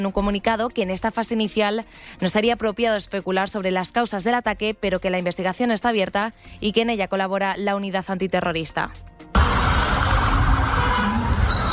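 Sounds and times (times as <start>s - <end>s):
speech: 0.0s - 9.1s
ambulance sirens wailing: 9.4s - 11.7s.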